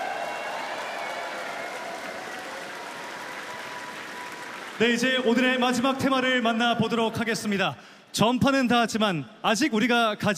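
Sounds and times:
large audience applause welcoming a guest: 0:00.0 - 0:06.0
speech: 0:04.8 - 0:10.3.

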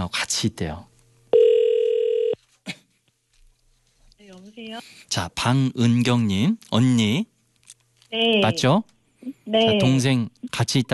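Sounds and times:
speech: 0:00.0 - 0:00.9, 0:04.6 - 0:07.3, 0:08.1 - 0:10.9
telephone ringback tone of an outgoing call: 0:01.3 - 0:02.4.

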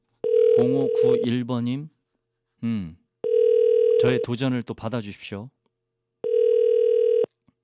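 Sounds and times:
telephone ringback buzz of unanswered outgoing call: 0:00.2 - 0:01.3, 0:03.2 - 0:04.2, 0:06.2 - 0:07.3
speech: 0:00.6 - 0:02.0, 0:02.6 - 0:03.0, 0:04.0 - 0:05.6.

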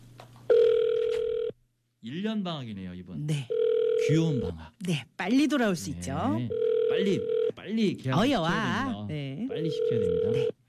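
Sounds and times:
ringback tone of an outgoing telephone call: 0:00.5 - 0:01.5, 0:03.5 - 0:04.5, 0:06.5 - 0:07.5, 0:09.6 - 0:10.5
speech: 0:02.0 - 0:10.6.

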